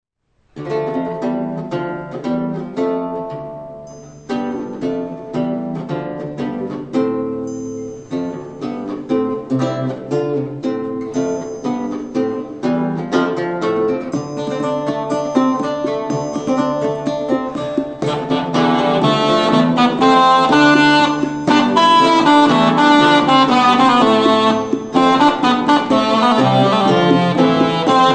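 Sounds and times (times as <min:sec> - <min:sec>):
lute: 0:00.6 - 0:28.1
cornamusa bagpipe: 0:17.5 - 0:28.1.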